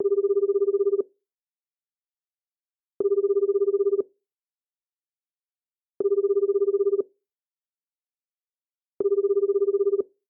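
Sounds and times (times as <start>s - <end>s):
telephone ringback tone: 0.0s - 1.0s, 3.0s - 4.0s, 6.0s - 7.0s, 9.0s - 10.1s.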